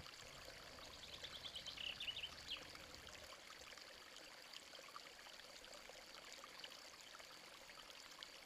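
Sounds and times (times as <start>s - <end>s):
stream of water flowing with light splashing: 0.0s - 8.4s.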